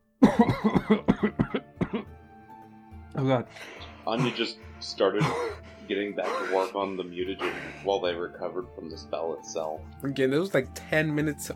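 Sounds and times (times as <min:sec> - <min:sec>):
harsh coughing fit: 0:00.2 - 0:02.1, 0:04.1 - 0:04.5, 0:05.2 - 0:06.8, 0:07.4 - 0:07.8
speech: 0:00.4 - 0:01.2, 0:03.2 - 0:11.5.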